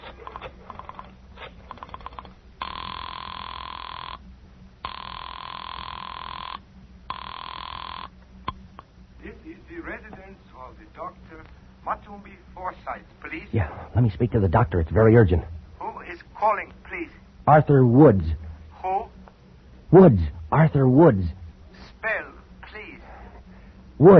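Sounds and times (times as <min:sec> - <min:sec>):
telephone ringing after a number is dialed: 0:01.7 - 0:04.2, 0:04.8 - 0:08.1
speech: 0:12.1 - 0:15.5, 0:17.5 - 0:18.4, 0:19.9 - 0:21.4, 0:24.0 - 0:24.1.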